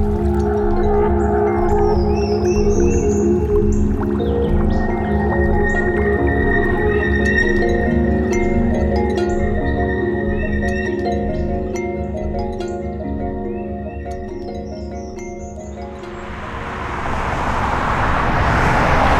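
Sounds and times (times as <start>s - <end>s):
road traffic with low engine hum: 0.0s - 19.1s
vehicle whooshing past: 16.0s - 19.1s.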